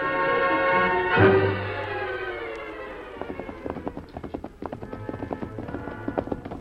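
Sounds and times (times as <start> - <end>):
sustained swell of music: 0.0 - 6.5
several horses galloping: 2.0 - 6.5.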